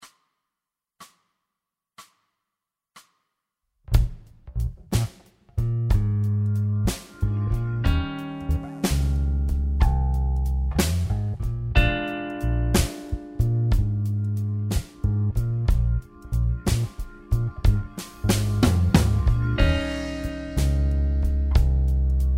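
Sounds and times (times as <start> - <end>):
slow blues rhythm in B flat: 3.9 - 22.3.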